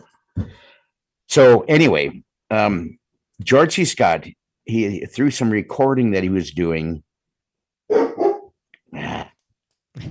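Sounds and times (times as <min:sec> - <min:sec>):
speech: 0:01.3 - 0:07.1, 0:07.9 - 0:08.3, 0:08.9 - 0:09.2
dogs barking and growling while playing: 0:07.9 - 0:08.6.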